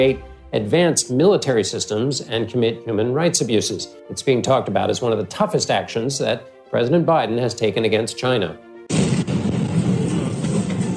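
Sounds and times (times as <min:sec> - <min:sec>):
speech: 0:00.0 - 0:09.0
loud explosion with deep continuous roar: 0:08.9 - 0:10.9.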